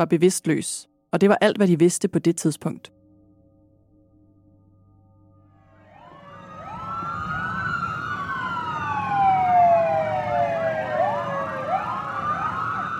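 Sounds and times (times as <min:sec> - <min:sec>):
speech: 0:00.0 - 0:03.0
police car siren wailing during emergency run: 0:05.7 - 0:12.9
low rumble of traffic: 0:06.1 - 0:12.9.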